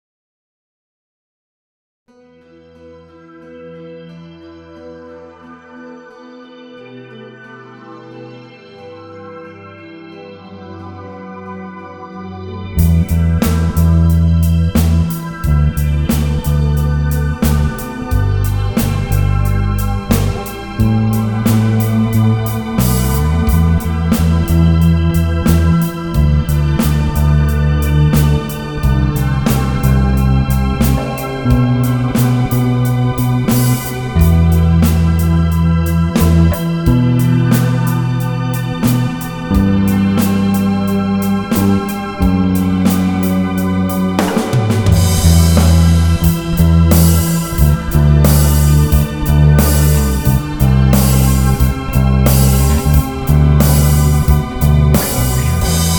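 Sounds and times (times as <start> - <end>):
bass line: 12.7 - 55.9.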